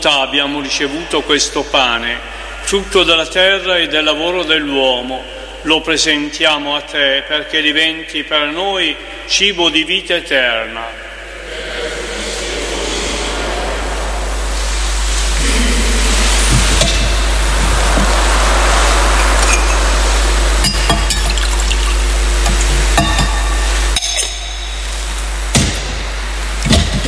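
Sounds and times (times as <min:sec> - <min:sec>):
low hum: 0:00.0 - 0:06.2, 0:07.8 - 0:27.0
speech: 0:00.0 - 0:11.7
constant hiss: 0:00.0 - 0:27.0
laughter: 0:11.3 - 0:19.4
water trickling into wine in a chalice during Mass: 0:20.6 - 0:23.6.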